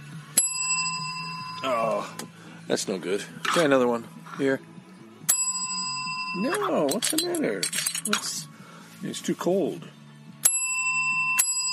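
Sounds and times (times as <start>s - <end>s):
bicycle-style bell ringing: 0.4s - 2.1s, 5.3s - 7.2s, 10.4s - 11.7s
speech: 1.6s - 4.7s, 6.4s - 10.0s.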